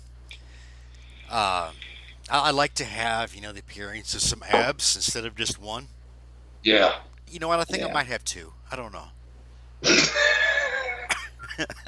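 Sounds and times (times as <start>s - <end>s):
speech: 1.3s - 6.0s, 6.6s - 9.2s, 11.6s - 11.8s
hard raspy cough: 9.8s - 11.2s.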